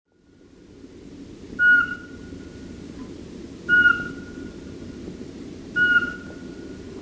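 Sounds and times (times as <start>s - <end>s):
dull low-frequency noise bed: 0.2s - 7.0s
Eurasian pygmy owl monotonous piping whistles: 1.6s - 2.3s, 3.7s - 4.5s, 5.8s - 6.5s.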